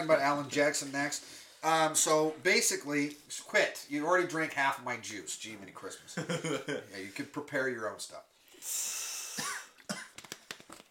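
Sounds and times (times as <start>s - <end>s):
speech: 0.0s - 9.5s
person coughing after taking a drink: 9.3s - 10.2s.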